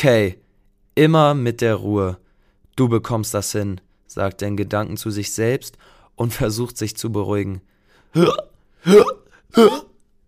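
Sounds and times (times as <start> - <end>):
speech: 0.0 - 0.4, 1.0 - 2.2, 2.8 - 9.9
voice acting out exaggerated hiccups: 8.2 - 10.0.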